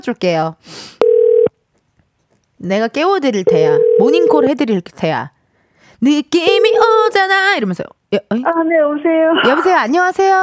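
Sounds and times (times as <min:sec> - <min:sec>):
speech: 0:00.0 - 0:01.0, 0:02.6 - 0:05.4, 0:06.0 - 0:10.4
steady electronic telephone dialing tone: 0:01.0 - 0:01.5, 0:03.5 - 0:04.5.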